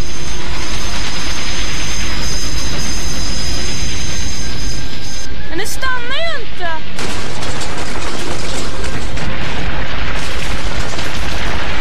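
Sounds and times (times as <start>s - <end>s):
faint high metallic squeal: 0.0s - 5.4s
train rolling on rails: 0.0s - 11.8s.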